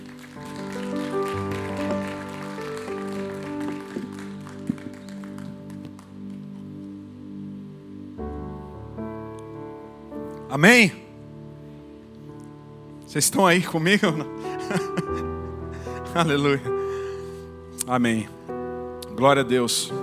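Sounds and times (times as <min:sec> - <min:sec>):
congregation applauding: 0:00.0 - 0:06.9
speech: 0:10.6 - 0:11.0, 0:13.2 - 0:15.2, 0:16.2 - 0:16.8, 0:17.9 - 0:18.4, 0:19.2 - 0:20.0
laughter: 0:14.6 - 0:15.9.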